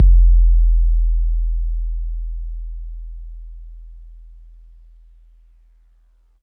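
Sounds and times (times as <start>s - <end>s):
808 bass drum from MPC60: 0.0s - 4.6s.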